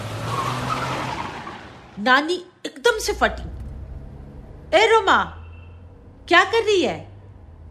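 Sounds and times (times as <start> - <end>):
car tires screeching during a U-turn on a highway: 0.0 - 2.0
speech: 2.0 - 3.6, 4.7 - 5.4, 6.3 - 7.1
low car engine rumble: 3.0 - 7.7.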